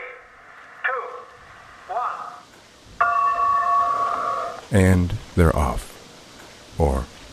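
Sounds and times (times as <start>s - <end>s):
regatta starting bell ringing: 3.0s - 4.5s
speech: 4.7s - 5.9s.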